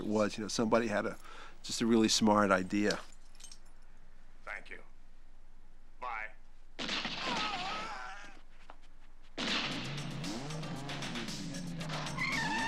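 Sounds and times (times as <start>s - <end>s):
noise: 0.0s - 12.6s
speech: 0.1s - 3.1s
Ferrari tire squeal and skidding: 12.1s - 12.6s.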